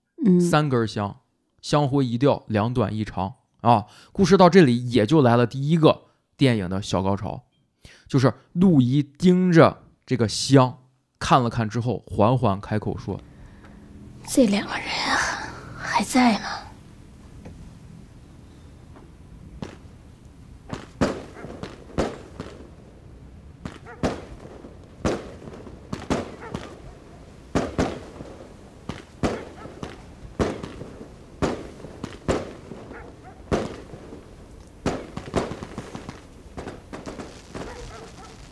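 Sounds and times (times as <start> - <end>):
speech: 0.2 - 13.3, 14.3 - 15.2, 16.0 - 16.6
firecrackers going off outside a house: 20.7 - 22.8, 23.6 - 26.8, 27.4 - 38.5.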